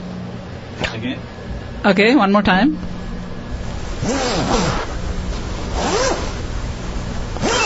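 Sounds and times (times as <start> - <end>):
speech: 0.9 - 2.9, 4.0 - 4.9
zipper being zipped up and down: 4.0 - 4.9, 5.7 - 6.5, 7.4 - 7.6.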